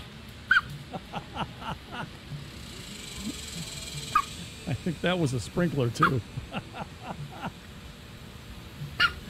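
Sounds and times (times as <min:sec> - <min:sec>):
steady hiss: 0:00.0 - 0:09.2
laughter: 0:00.8 - 0:02.2, 0:06.0 - 0:07.6
duck sharp yelp: 0:04.1 - 0:04.3, 0:06.0 - 0:06.2, 0:09.0 - 0:09.2
speech: 0:04.8 - 0:07.0
duck hiccuping: 0:09.0 - 0:09.2.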